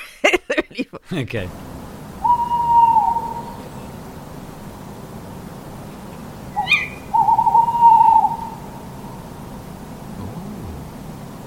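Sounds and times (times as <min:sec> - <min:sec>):
laughter: 0:00.0 - 0:01.4
soft background hiss: 0:00.0 - 0:11.4
speech: 0:00.7 - 0:01.6
two tawny owls calling to each other across a lake in a forest: 0:02.2 - 0:04.1, 0:06.4 - 0:09.4, 0:10.0 - 0:11.0.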